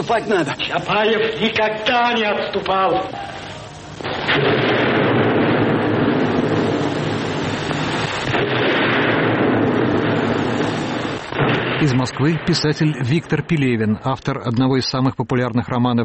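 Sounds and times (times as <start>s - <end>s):
speech: 0.1s - 3.4s, 11.8s - 16.0s
grenades blowing up an armored car: 3.4s - 13.8s
cannon fire: 4.0s - 13.4s.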